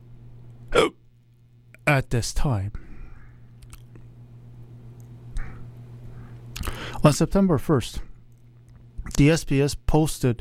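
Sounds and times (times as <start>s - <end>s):
faint low hum: 0.0s - 10.4s
hiccup: 0.7s - 1.0s
speech: 1.9s - 2.8s, 7.0s - 8.1s, 9.1s - 10.4s.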